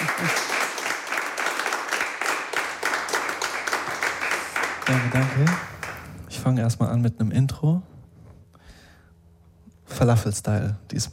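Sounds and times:
crowd applauding with many hands clapping: 0.0s - 6.2s
speech: 4.9s - 5.7s, 6.4s - 7.9s, 10.0s - 11.1s.

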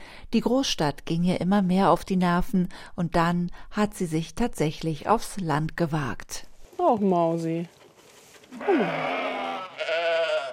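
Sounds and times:
speech: 0.3s - 7.8s, 8.5s - 9.9s
newborn white lamb bleating in a stable: 8.6s - 10.5s.

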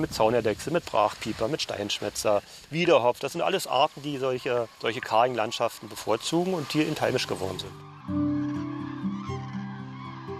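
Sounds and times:
speech: 0.0s - 8.2s
flock of wintering northern geese honking: 3.6s - 10.3s.

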